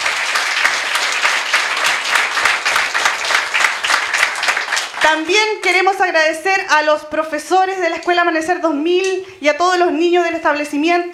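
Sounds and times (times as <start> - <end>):
audience applause: 0.0 - 6.0
speech: 5.0 - 11.1.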